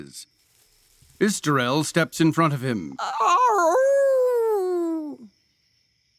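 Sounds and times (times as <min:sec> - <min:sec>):
speech: 0:00.0 - 0:00.4, 0:01.2 - 0:03.9
person imitating a wolf howl: 0:03.0 - 0:05.3.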